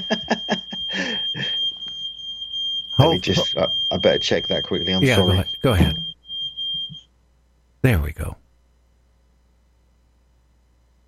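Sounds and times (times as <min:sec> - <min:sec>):
bursts of laughter and vocal sounds: 0:00.0 - 0:01.6
high-pitched electronic alarm tone: 0:00.0 - 0:07.1
speech: 0:03.2 - 0:06.1, 0:07.8 - 0:08.4.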